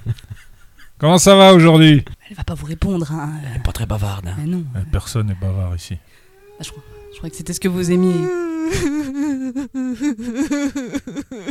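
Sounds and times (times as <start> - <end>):
speech: 1.0 - 11.5
woman crying and whimpering: 6.4 - 11.5.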